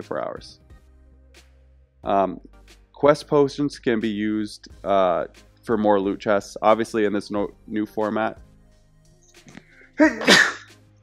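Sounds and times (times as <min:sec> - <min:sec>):
speech: 0:00.0 - 0:00.6, 0:02.0 - 0:08.4, 0:09.4 - 0:10.6
person sneezing: 0:10.0 - 0:10.7.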